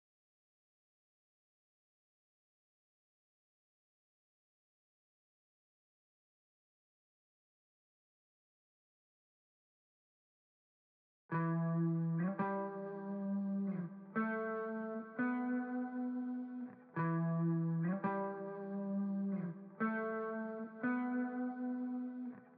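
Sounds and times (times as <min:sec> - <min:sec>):
backing guitar in G major: 0:11.3 - 0:22.5.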